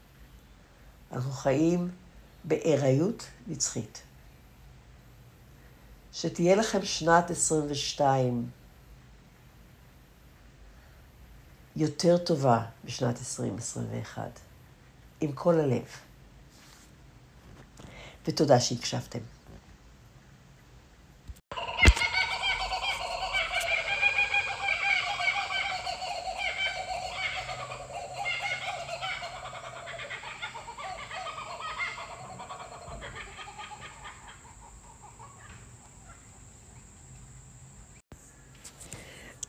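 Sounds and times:
speech: 1.1 - 4.1, 6.2 - 8.6, 11.8 - 14.5, 15.2 - 16.1, 18.2 - 19.3
kookaburra raucous laughing call: 21.5 - 36.4.

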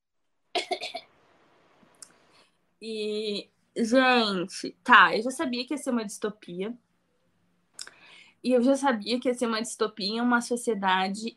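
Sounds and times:
person coughing: 0.6 - 1.0
speech: 2.8 - 6.8, 8.4 - 11.3
soft breathing: 7.8 - 8.4.

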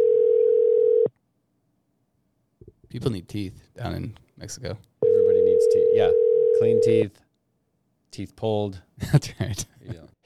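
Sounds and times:
electronic phone ring tone: 0.0 - 1.1, 5.0 - 7.0
speech: 2.9 - 4.9, 5.7 - 7.3, 8.1 - 10.2.

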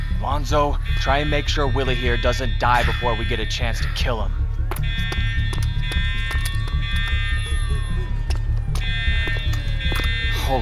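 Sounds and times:
dense low rumble: 0.0 - 10.3
loud high-pitched electronic alarm ringing: 0.0 - 10.6
speech: 0.2 - 4.4, 10.5 - 10.6
sharp clicks and knocks: 4.7 - 7.4, 8.2 - 10.3.

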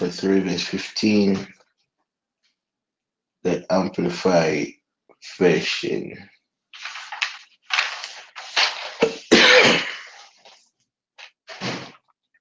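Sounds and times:
speech: 0.0 - 1.6, 3.4 - 6.3
person coughing: 9.0 - 10.2.

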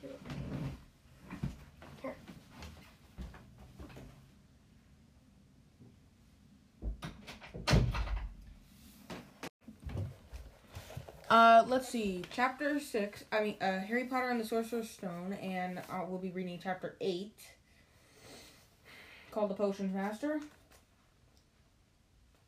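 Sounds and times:
chair being shifted and dragged out of the room: 0.0 - 3.0
soft knocks, louder bumps and clunks: 6.8 - 8.5
speech: 11.3 - 17.6, 19.4 - 20.6.

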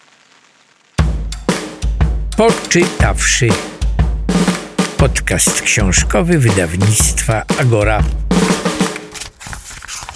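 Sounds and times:
rain drumming during a storm: 0.0 - 9.0
speech: 2.4 - 3.8, 5.0 - 8.4.

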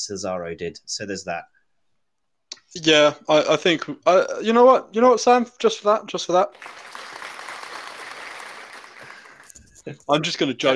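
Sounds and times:
speech: 0.0 - 1.6, 2.8 - 7.0, 9.8 - 10.7
dense crowd applause sound effect: 6.5 - 9.7.

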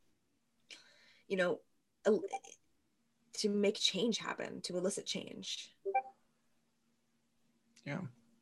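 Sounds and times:
faint low hum: 0.0 - 8.3
speech: 1.3 - 2.6, 3.4 - 5.8, 7.8 - 8.2
Discord app notification bright tonal blips: 5.9 - 6.1.

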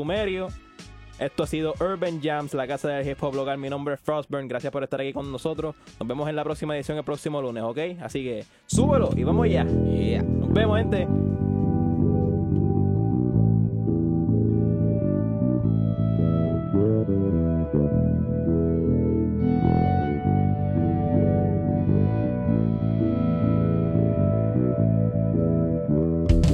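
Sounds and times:
loud steady instrumental hip hop beat with thick low end: 0.0 - 3.9, 4.5 - 26.5
speech: 0.0 - 11.4
layered effect-heavy melodic tones: 8.7 - 26.5.

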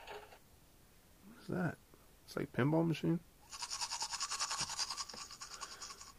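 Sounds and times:
speech: 1.5 - 3.3
toothbrush scrubbing teeth: 3.5 - 6.1.

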